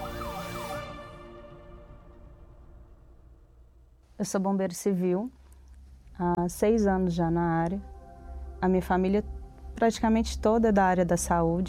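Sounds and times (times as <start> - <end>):
emergency vehicle siren wailing in rising and falling sweeps: 0.0 - 2.4
speech: 4.2 - 5.4, 6.2 - 7.9, 8.6 - 11.6.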